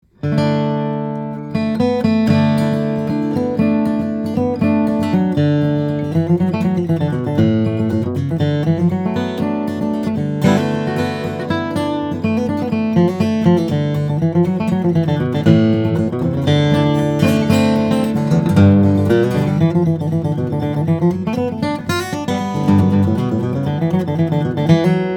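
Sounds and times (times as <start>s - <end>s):
dreadnought steel-string flattop guitar of Brazilian rosewood and Carpathian spruce: 0.0s - 25.1s.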